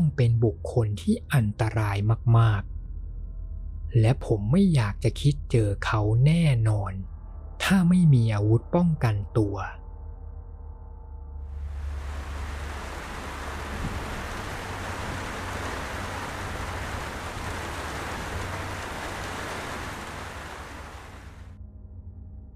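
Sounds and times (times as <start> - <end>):
speech: 0.2 - 2.7, 3.9 - 7.1, 7.7 - 9.8
deep rumble: 10.5 - 22.4
heavy rain pouring down outside a house on a mountain: 11.5 - 21.6.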